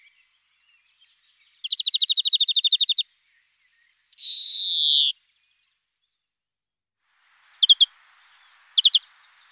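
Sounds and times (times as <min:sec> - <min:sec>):
European greenfinch rapid trill: 0:01.7 - 0:03.0, 0:07.6 - 0:07.9, 0:08.7 - 0:09.1.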